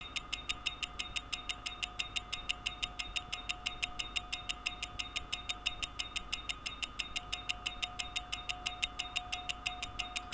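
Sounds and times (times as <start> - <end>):
Miyota 8215 watch ticking at 21600: 0.0 - 10.3.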